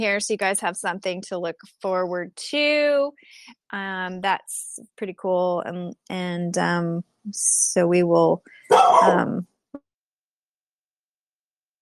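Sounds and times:
speech: 0.0 - 9.5
dog barking: 8.7 - 9.2.

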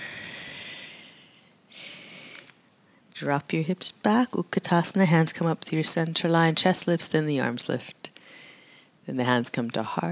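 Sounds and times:
person exhaling during a yoga flow: 0.0 - 2.5
speech: 3.2 - 8.1, 9.1 - 10.0.

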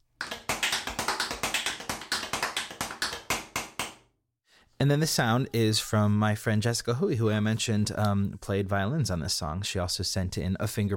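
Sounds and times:
tap dance solo in tap shoes in a hotel bathtub: 0.0 - 4.1
speech: 4.8 - 10.9.

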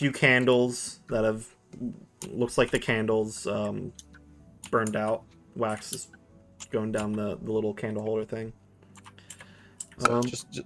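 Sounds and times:
speech: 0.0 - 8.6, 10.0 - 10.6
typing on a computer keyboard: 8.9 - 10.3.

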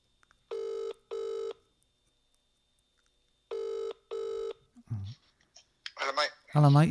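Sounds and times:
phone ringback tone beeps through a handset: 0.5 - 1.6, 3.5 - 4.6
speech: 6.1 - 6.9.

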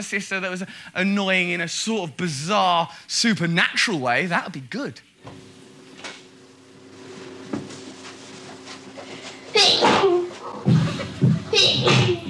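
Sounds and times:
speech: 0.0 - 5.6
woman sneezing: 9.5 - 10.4, 11.6 - 12.2.

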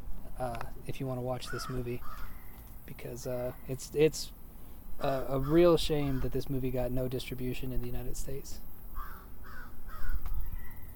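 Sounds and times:
speech: 0.4 - 4.4, 5.0 - 8.7
crows cawing: 1.4 - 2.8, 5.0 - 6.4, 8.9 - 10.9.

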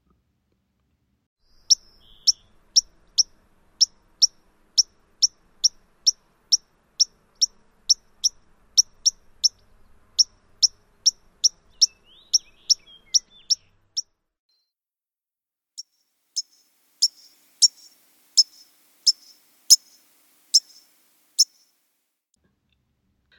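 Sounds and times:
white-crowned sparrow sharp pink call note: 1.5 - 14.1, 15.8 - 21.8.

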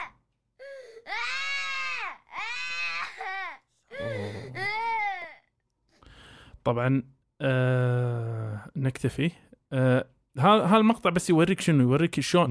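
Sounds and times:
child screaming and crying during a night terror: 0.0 - 5.5
child gasping: 0.6 - 1.2, 3.6 - 5.0
speech: 6.6 - 12.4.

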